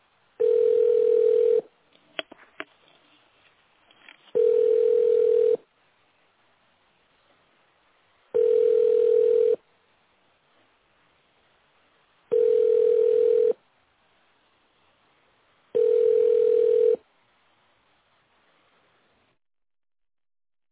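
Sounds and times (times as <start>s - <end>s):
telephone ringback tone during an unanswered call: 0.4s - 1.7s, 4.4s - 5.6s, 8.4s - 9.6s, 12.3s - 13.6s, 15.8s - 17.0s.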